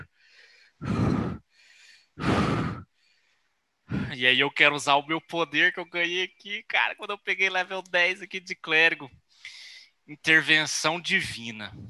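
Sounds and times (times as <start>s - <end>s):
heavy panting breath: 0.0s - 3.0s, 3.9s - 4.2s
speech: 0.8s - 1.1s, 4.2s - 11.8s.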